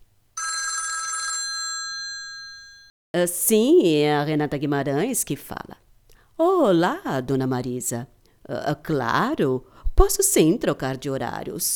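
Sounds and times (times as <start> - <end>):
metallic telephone bell ringing: 0.4 - 2.9
speech: 3.2 - 5.8, 6.6 - 11.7.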